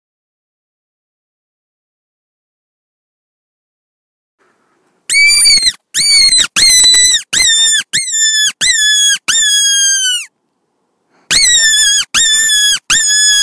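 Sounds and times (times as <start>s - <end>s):
fox giving shrill squealing yelps: 5.1s - 10.3s, 11.3s - 13.4s.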